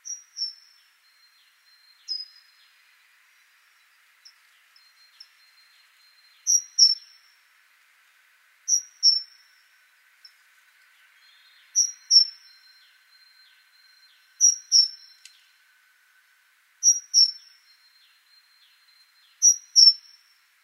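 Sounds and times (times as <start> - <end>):
great tit Parus major calls: 0.0 - 7.4, 8.7 - 20.6
faint background hum: 0.0 - 20.6.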